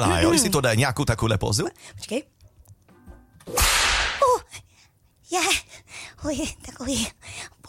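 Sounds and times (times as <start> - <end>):
speech: 0.0 - 2.4, 3.4 - 3.8, 5.3 - 7.6
whip lash swishing and cracking: 3.5 - 4.3.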